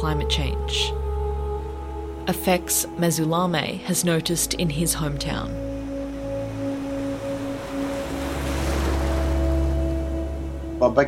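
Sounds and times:
speech: 0.0 - 1.0, 2.3 - 5.7, 10.8 - 11.0
ocean waves breaking on a beach: 3.8 - 10.8.

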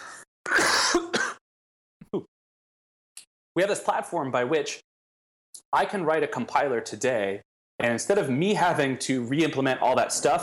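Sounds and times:
person coughing: 0.5 - 1.4
speech: 2.1 - 2.3, 3.6 - 4.9, 5.7 - 10.4.

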